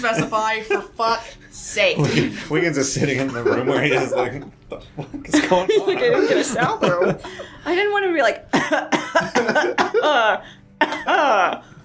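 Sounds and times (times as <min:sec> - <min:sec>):
speech: 0:00.0 - 0:11.7
laughter: 0:02.0 - 0:07.7, 0:08.6 - 0:11.6
person coughing: 0:08.6 - 0:10.1.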